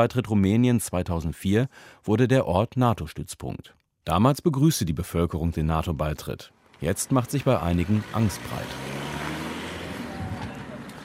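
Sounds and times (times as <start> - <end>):
speech: 0.0 - 9.0
idling car engines from a line of vehicles at a military checkpoint: 6.6 - 11.0.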